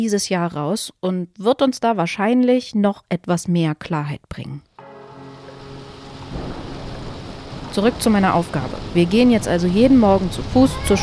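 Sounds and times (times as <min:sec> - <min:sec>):
speech: 0:00.0 - 0:04.7, 0:07.7 - 0:11.0
heavy rain: 0:04.8 - 0:11.0
thunder rumbling: 0:04.8 - 0:11.0.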